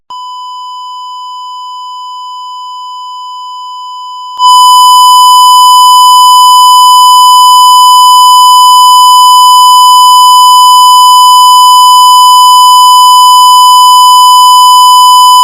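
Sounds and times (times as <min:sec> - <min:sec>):
loud noise: 0:04.4 - 0:15.4.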